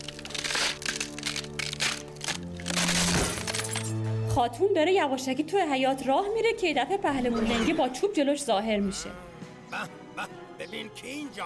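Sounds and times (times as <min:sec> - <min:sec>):
magic clay jar cracking in a laboratory: 0:00.0 - 0:03.9
speech: 0:04.4 - 0:11.4.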